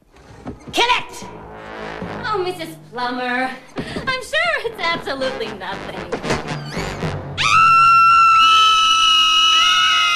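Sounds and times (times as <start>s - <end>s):
speech: 0.5s - 1.4s, 2.3s - 6.5s
three women screaming together: 7.4s - 10.1s.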